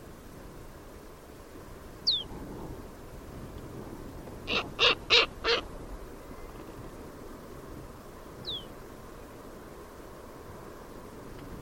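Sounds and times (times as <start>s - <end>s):
background hiss: 0.0s - 11.6s
bird calls with thin high note and harsh caw-like notes: 2.0s - 2.3s, 4.5s - 5.7s, 8.4s - 8.8s.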